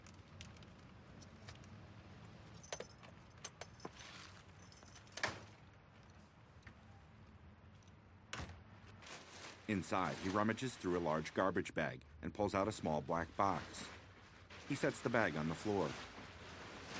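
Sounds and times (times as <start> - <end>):
keys jingling and clattering in a lock: 2.6 - 5.3
speech: 9.7 - 13.9, 14.7 - 16.1.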